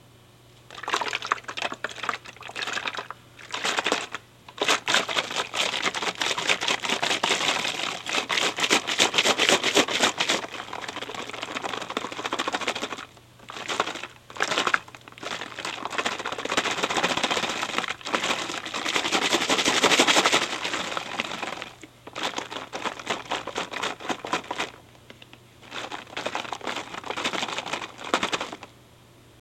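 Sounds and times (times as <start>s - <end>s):
liquid in a bottle: 0.7s - 28.7s.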